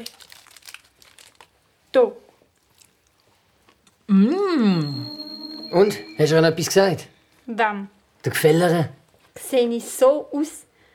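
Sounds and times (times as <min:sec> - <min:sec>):
chocolate stick paper wrapper crinkling: 0:00.0 - 0:01.7
speech: 0:02.0 - 0:02.2, 0:04.1 - 0:05.1, 0:05.7 - 0:10.7.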